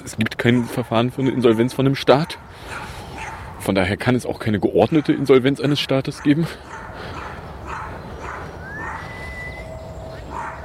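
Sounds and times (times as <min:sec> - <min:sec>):
noisy outdoor background: 0:00.0 - 0:10.6
speech: 0:00.1 - 0:02.8, 0:03.7 - 0:07.1
unleashed dog barking: 0:00.4 - 0:03.5, 0:04.9 - 0:05.4, 0:06.1 - 0:09.2, 0:10.2 - 0:10.6.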